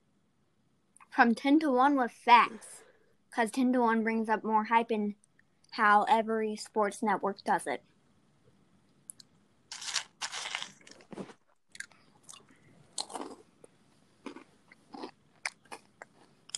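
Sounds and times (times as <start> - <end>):
speech: 1.2 - 7.9
breakfast cereal crunching while being chewed: 9.7 - 13.4, 14.2 - 16.5.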